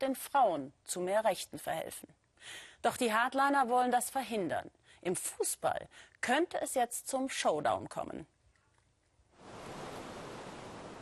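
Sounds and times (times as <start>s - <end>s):
speech: 0.0s - 8.3s
Caspian Sea waves washing onto a beach: 9.4s - 11.0s.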